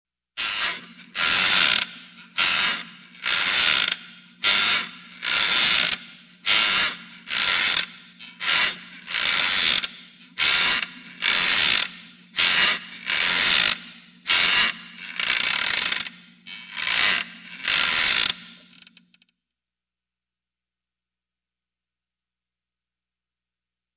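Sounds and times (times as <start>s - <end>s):
rocking chair creaking: 0.4s - 19.2s.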